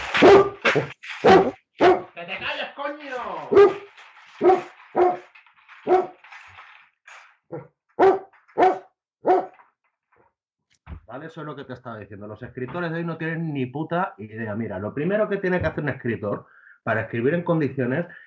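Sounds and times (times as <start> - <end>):
dog barking: 0.2 - 2.1, 3.5 - 5.2, 5.8 - 6.2, 7.5 - 9.6
speech: 0.7 - 1.4, 11.3 - 18.2.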